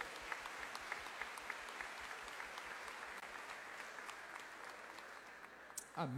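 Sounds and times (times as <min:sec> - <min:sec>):
congregation applauding: 0:00.0 - 0:06.1
speech: 0:06.0 - 0:06.1.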